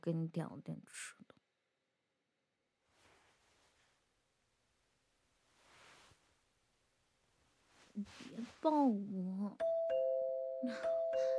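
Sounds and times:
speech: 0.0s - 1.4s, 8.0s - 9.9s, 10.6s - 11.3s
electronic doorbell chime: 9.6s - 11.3s.

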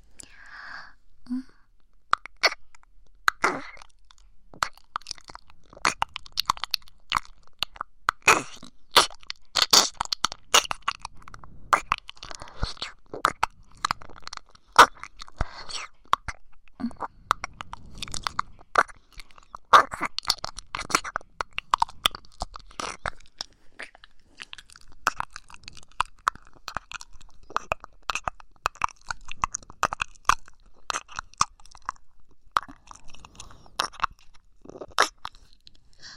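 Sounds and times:
mouth sounds of nibbling and tasting an ear: 2.1s - 36.1s.

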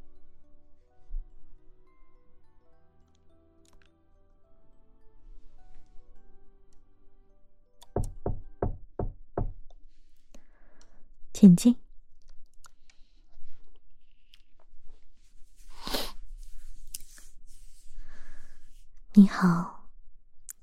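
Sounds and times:
quiet low music or hum: 0.0s - 20.5s
knocking on a door: 7.9s - 9.6s
speech: 11.4s - 11.8s.

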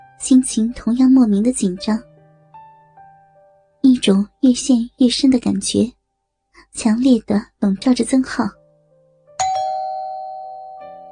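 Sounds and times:
speech: 0.2s - 2.1s, 4.1s - 6.0s, 6.8s - 8.6s
doorbell chiming two tones: 9.4s - 11.1s.

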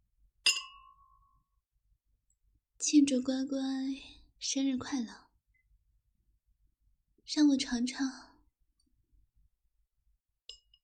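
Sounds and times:
glasses clinking in a birthday toast: 0.5s - 1.0s
speech: 2.8s - 5.2s, 7.3s - 8.3s.

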